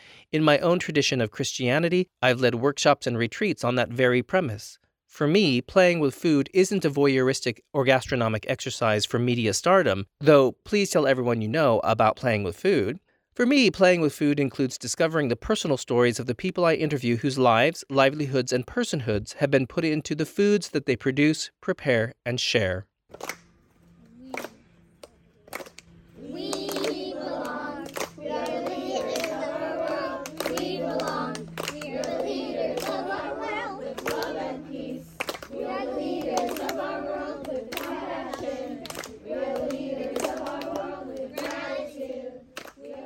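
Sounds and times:
speech: 0.3s - 23.4s
sharp rhythmic hand claps and slaps: 23.1s - 23.6s, 24.2s - 43.0s
children at summer camp singing a camp song in unison: 26.2s - 43.0s.

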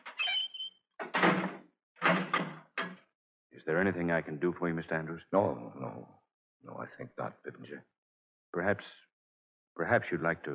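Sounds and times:
heavy cell door creaking open: 0.0s - 3.0s
heavy cell door sliding and banging shut with metallic clanks: 1.0s - 3.0s
speech: 3.7s - 9.1s, 9.8s - 10.5s.

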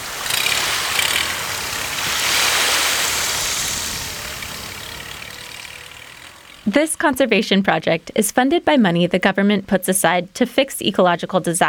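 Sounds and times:
rushing water and splashing waves: 0.0s - 6.6s
tiny boat motor droning: 0.0s - 8.3s
speech: 6.7s - 11.6s.

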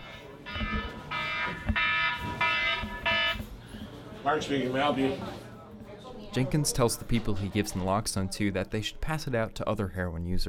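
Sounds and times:
emergency-alarm ringtone buzzing on a man's phone: 0.5s - 3.5s
speech: 4.2s - 5.4s, 6.3s - 10.4s.

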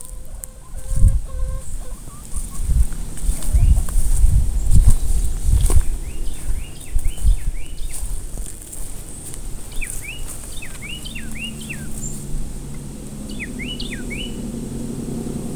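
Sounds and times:
cardinal singing slurred whistles: 0.0s - 8.1s, 9.0s - 15.5s
scuffing thumps: 0.0s - 11.0s
chickens clucking: 0.0s - 15.5s
steady low rumble of noise: 0.0s - 15.5s.

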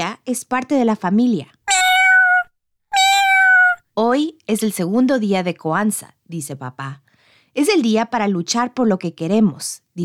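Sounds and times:
speech: 0.1s - 1.6s, 4.0s - 7.0s, 7.6s - 10.0s
cat meowing: 1.7s - 3.8s.

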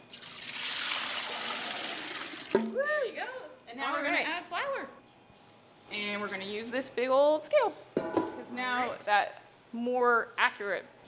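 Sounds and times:
water pouring into a mixer bowl: 0.0s - 2.8s
speech: 2.6s - 5.0s, 5.9s - 11.0s.

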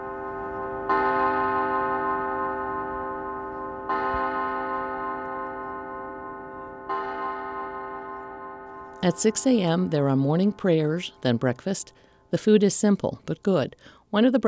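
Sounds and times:
monastery bell tolling: 0.0s - 12.2s
speech: 9.0s - 14.4s.

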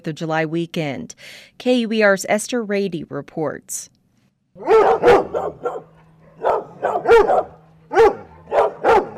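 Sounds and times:
speech: 0.0s - 3.9s, 4.6s - 5.7s, 7.1s - 8.2s
faint steady hum: 0.0s - 9.1s
dog barking: 4.6s - 9.1s.

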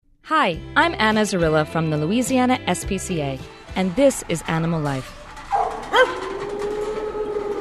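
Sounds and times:
speech: 0.3s - 5.2s
steady eerie droning hum: 5.0s - 7.5s
dog barking: 5.5s - 6.4s.

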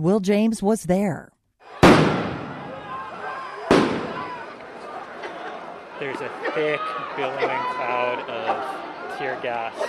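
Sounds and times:
speech: 0.0s - 1.3s, 6.0s - 9.8s
faint crowd voices at a street protest: 1.6s - 9.8s
police flashbang devices exploding at a street protest: 1.8s - 4.5s
laughter: 2.9s - 9.8s.

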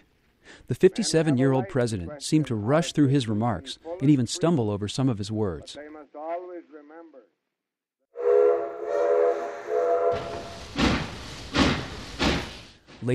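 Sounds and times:
speech: 0.7s - 7.4s
steam train whistle with a multi-tone blast: 8.2s - 10.7s
steam locomotive chuffing: 8.2s - 13.1s.

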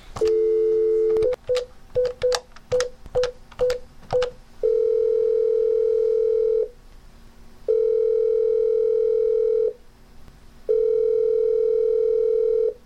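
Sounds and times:
telephone dial tone: 0.2s - 1.4s, 4.6s - 6.7s, 7.7s - 9.8s, 10.7s - 12.8s
long steady telephone ringing tones: 0.2s - 2.4s, 4.2s - 6.7s, 7.7s - 9.8s, 10.7s - 12.8s
telephone keypad beeps: 0.2s - 4.4s.

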